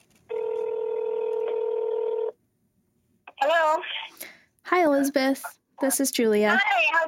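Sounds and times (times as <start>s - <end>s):
telephone dialing tone of an outgoing call: 0.3s - 2.4s
speech: 5.0s - 7.0s.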